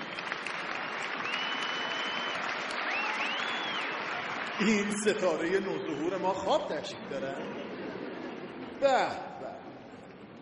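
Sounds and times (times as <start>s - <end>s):
audience applause at an awards presentation: 0.0s - 5.7s
speech: 4.6s - 7.8s, 8.8s - 9.3s.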